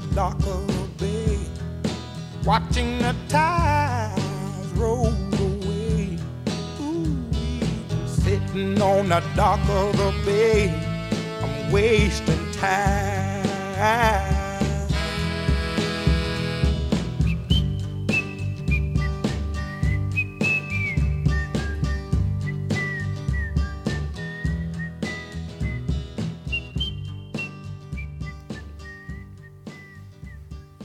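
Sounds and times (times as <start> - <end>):
full band playing a relaxed soul groove with drums and bass: 0.0 - 30.8
speech: 0.2 - 0.6, 2.4 - 4.2, 4.8 - 5.2, 8.4 - 10.9, 11.7 - 14.4
clear whistled melody: 14.9 - 30.8.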